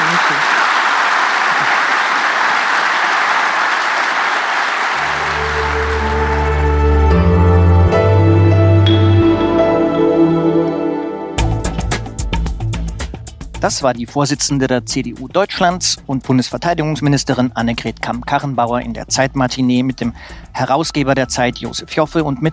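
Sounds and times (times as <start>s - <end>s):
audience applause: 0.0s - 7.2s
musical jingle: 5.0s - 12.5s
speech: 13.6s - 22.5s.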